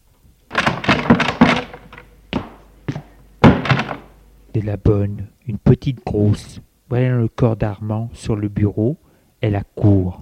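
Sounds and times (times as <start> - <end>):
door opening with rattling knocks and clunks: 0.5 - 4.2
heavier thunks: 0.5 - 4.2
speech: 4.6 - 10.1.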